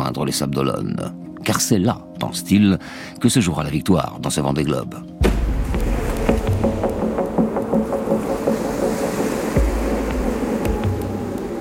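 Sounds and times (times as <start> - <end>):
speech: 0.2 - 5.4
rushing ocean water: 5.2 - 11.6
sailboat hull slamming into heavy ocean waves: 5.2 - 11.6.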